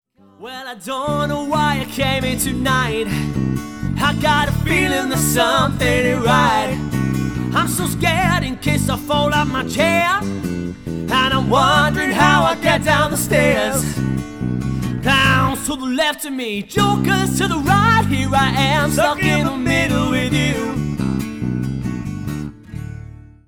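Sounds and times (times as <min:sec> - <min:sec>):
acoustic duo playing: 0:01.1 - 0:15.8, 0:16.8 - 0:23.4.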